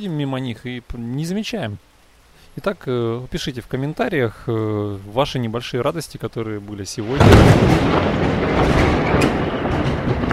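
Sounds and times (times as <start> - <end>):
speech: 0.0 - 1.9, 2.6 - 9.4
thunder rumbling during a thunderstorm with lightning: 7.0 - 10.3.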